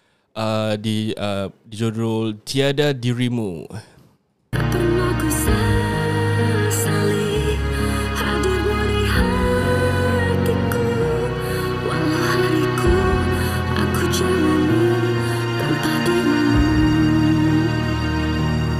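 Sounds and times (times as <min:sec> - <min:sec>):
speech: 0:00.4 - 0:03.9
recorded pop ballad with woman singing over bass, keys and drums: 0:04.6 - 0:18.7.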